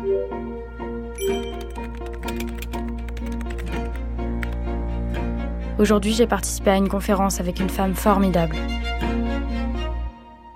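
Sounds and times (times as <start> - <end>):
soft steady musical tone: 0.0 - 10.5
typing on a computer keyboard: 1.2 - 4.6
speech: 5.8 - 9.1.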